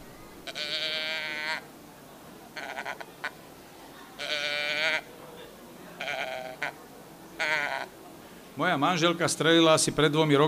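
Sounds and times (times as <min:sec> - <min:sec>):
person imitating sheep bleats to lure a mouflon during the rut: 0:00.4 - 0:01.6, 0:02.6 - 0:03.0, 0:06.0 - 0:06.8, 0:07.4 - 0:07.9
speech: 0:08.6 - 0:10.4.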